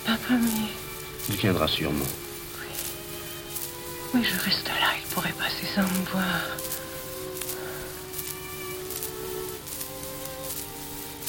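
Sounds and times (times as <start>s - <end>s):
steady soft rain falling: 0.0s - 11.2s
sustained low humming tones: 0.0s - 11.2s
speech: 1.4s - 2.2s, 4.1s - 6.8s.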